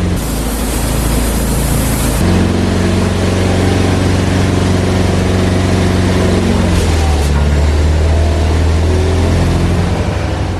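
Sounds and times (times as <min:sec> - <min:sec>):
hissing spray: 0:00.0 - 0:07.6
machine engine driving a hydraulic pump: 0:00.0 - 0:10.5.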